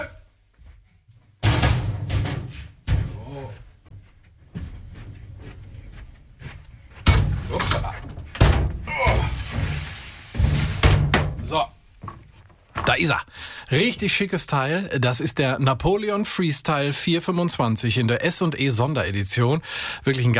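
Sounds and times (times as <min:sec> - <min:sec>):
door opening and closing: 0:01.4 - 0:03.3, 0:07.0 - 0:11.6
speech: 0:12.9 - 0:20.3.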